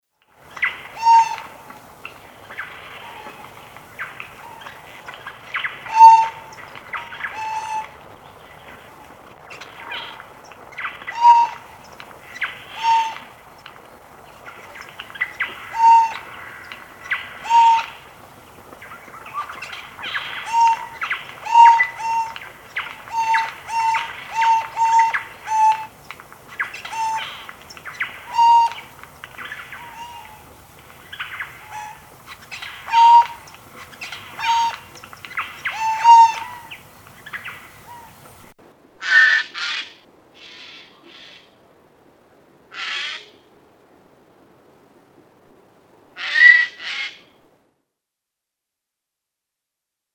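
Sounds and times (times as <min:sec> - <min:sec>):
jay calling: 0:00.5 - 0:13.5, 0:14.1 - 0:41.4.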